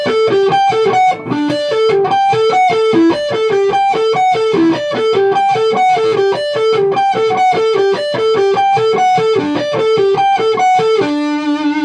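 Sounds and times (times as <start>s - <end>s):
overdriven electric guitar on the bridge pickup playing an arpeggiated rock riff: 0.0s - 11.8s.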